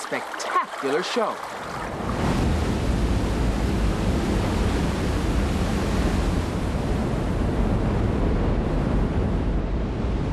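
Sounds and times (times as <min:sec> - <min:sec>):
roaring water of a huge waterfall: 0:00.0 - 0:10.3
speech: 0:00.1 - 0:02.2.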